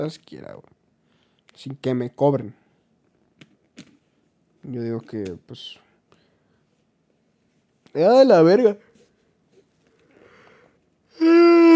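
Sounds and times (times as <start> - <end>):
speech: 0.0 - 0.8, 1.6 - 2.6, 4.6 - 5.8, 7.9 - 8.9
person letting out a long breathy yawn: 11.1 - 11.7.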